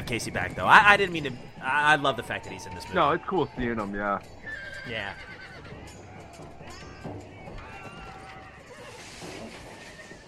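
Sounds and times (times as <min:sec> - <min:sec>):
horse hooves clip-clopping: 0:00.0 - 0:10.2
speech: 0:00.1 - 0:05.9
horse whinnying: 0:04.4 - 0:10.2.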